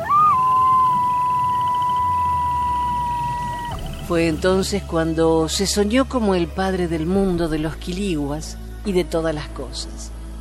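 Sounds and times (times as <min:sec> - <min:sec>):
coyote howling: 0:00.0 - 0:04.1
speech: 0:04.1 - 0:10.2.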